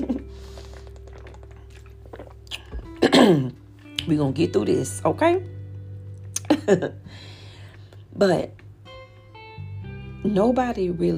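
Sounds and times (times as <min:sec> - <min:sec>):
person gulping water: 0:00.0 - 0:03.5
person sipping water: 0:00.2 - 0:03.1
speech: 0:03.3 - 0:05.6, 0:06.7 - 0:07.3, 0:08.2 - 0:08.6, 0:10.2 - 0:11.1.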